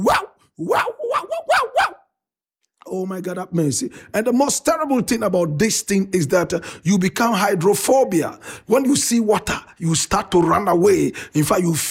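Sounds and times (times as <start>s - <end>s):
speech: 0.0s - 1.6s, 2.9s - 11.8s
person imitating dog barking, acting out a rabies victim: 0.0s - 2.1s.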